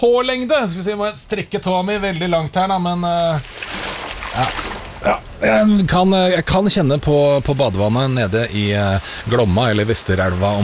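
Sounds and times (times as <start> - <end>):
speech: 0.0 - 10.6
flowing river water: 3.2 - 10.6.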